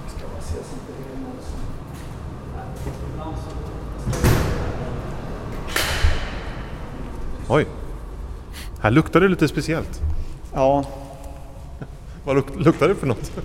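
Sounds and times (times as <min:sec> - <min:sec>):
heavy blast door being opened and closed: 0:04.0 - 0:07.0
speech: 0:07.5 - 0:07.8, 0:08.8 - 0:11.0, 0:11.8 - 0:13.4.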